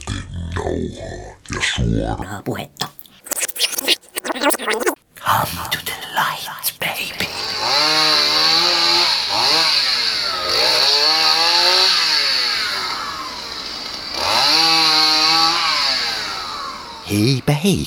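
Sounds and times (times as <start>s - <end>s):
speech: 0.6s - 2.9s, 4.7s - 7.2s, 17.1s - 17.8s
chainsaw engine revving: 7.2s - 17.8s.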